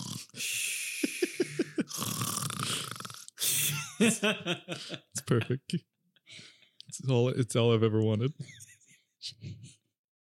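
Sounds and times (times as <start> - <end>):
person snoring: 0.0 - 3.8
laughter: 1.0 - 1.9, 3.7 - 5.6
speech: 4.0 - 5.9, 7.0 - 8.6.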